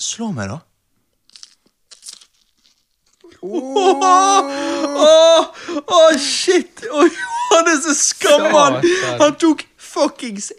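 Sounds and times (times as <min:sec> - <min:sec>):
speech: 0:00.0 - 0:00.7, 0:03.4 - 0:10.5
soft chewing: 0:01.1 - 0:03.4
man biting into a whole habanero pepper: 0:01.2 - 0:03.3
laughter: 0:03.4 - 0:05.5, 0:06.8 - 0:09.4.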